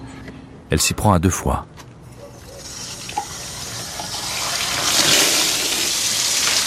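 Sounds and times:
speech: 0:00.7 - 0:01.9
water gushing from a tap into containers: 0:02.6 - 0:06.6.

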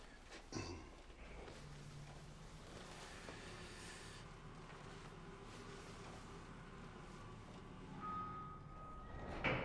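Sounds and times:
elevator car moving with mechanical hum and rumble: 0:01.0 - 0:09.6
elevator doors sliding open with a soft clunk: 0:07.6 - 0:09.6.

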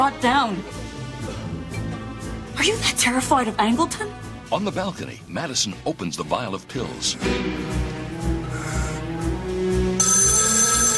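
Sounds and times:
speech: 0:00.0 - 0:00.9, 0:02.6 - 0:08.0
steady pulsing musical backdrop: 0:00.0 - 0:10.0
telephone ringing with a bright trilling tone: 0:09.9 - 0:10.9.

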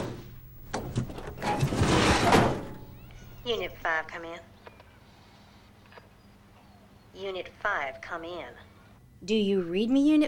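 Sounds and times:
cab sliding door pushed closed along its track: 0:00.0 - 0:02.8
speech: 0:03.5 - 0:04.5, 0:07.2 - 0:10.2.

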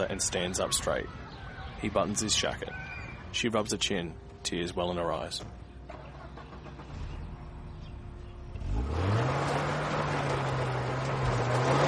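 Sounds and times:
speech: 0:00.0 - 0:05.6
Volvo car engine revving while driving in circles on a dusty parking lot: 0:06.4 - 0:11.8.

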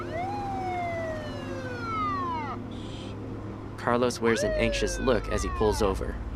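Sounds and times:
police car siren: 0:00.0 - 0:03.1, 0:04.2 - 0:06.2
speech: 0:03.9 - 0:06.2.

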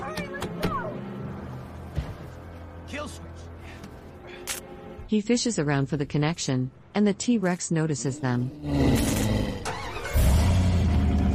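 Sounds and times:
speech: 0:05.1 - 0:09.0
truck engine revving and accelerating away: 0:08.6 - 0:11.3.

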